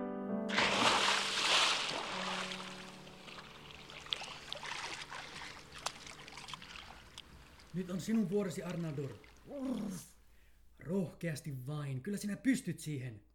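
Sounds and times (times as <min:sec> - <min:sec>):
water splashing as someone swims through ice-cold water: 0:00.5 - 0:09.8
speech: 0:07.8 - 0:10.1, 0:10.8 - 0:13.3.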